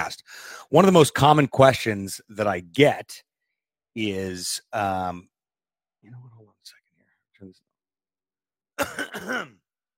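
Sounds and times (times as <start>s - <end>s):
speech: 0.1s - 3.3s, 4.0s - 5.3s, 6.0s - 6.3s, 7.4s - 7.6s, 8.8s - 9.6s
person coughing with a rough throat-clearing quality: 8.8s - 9.6s.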